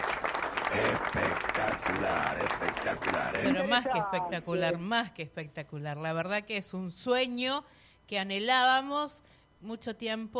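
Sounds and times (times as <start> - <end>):
applause sound effect of crowd clapping: 0.0 - 3.6
speech: 0.7 - 1.4, 2.0 - 10.3.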